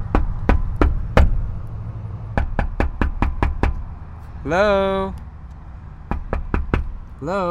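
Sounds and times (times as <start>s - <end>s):
low rumbling hum: 0.0s - 7.4s
knocking on a door: 0.1s - 1.4s, 2.4s - 3.8s, 6.1s - 7.0s
speech: 4.4s - 5.2s, 7.2s - 7.4s.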